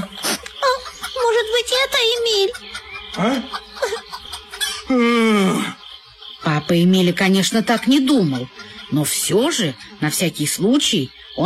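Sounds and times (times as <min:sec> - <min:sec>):
laughter: 0:00.0 - 0:06.6
hen clucking: 0:00.0 - 0:11.4
speech: 0:01.6 - 0:03.6, 0:06.7 - 0:11.4.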